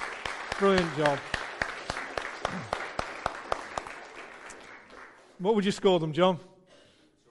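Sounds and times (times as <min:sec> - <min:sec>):
audience applauding: 0:00.0 - 0:05.4
one clapper's sharp evenly spaced claps: 0:00.0 - 0:05.4
speech: 0:00.6 - 0:01.3, 0:02.5 - 0:02.8, 0:05.4 - 0:06.5.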